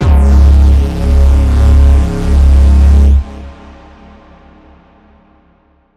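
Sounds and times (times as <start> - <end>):
fusion reaction sound effect: 0.0 - 3.5.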